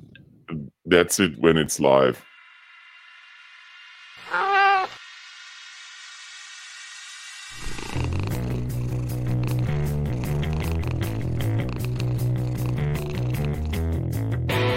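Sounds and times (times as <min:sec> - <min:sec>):
speech: 0:00.9 - 0:02.3
cat yowling in a played video: 0:04.2 - 0:05.0
busy music track with steady beats: 0:08.1 - 0:14.7.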